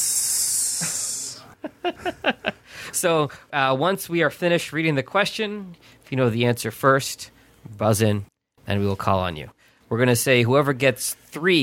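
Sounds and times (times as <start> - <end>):
short vocal bursts: 0.0 - 1.6
voice imitating a snake's hiss: 0.0 - 1.6
speech: 1.8 - 11.6.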